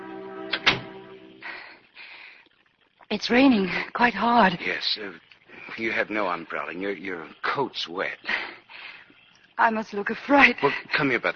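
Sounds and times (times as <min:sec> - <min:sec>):
steady low tonal hum: 0:00.0 - 0:01.8
door closing: 0:00.5 - 0:01.1
speech: 0:03.1 - 0:08.4, 0:09.6 - 0:11.3.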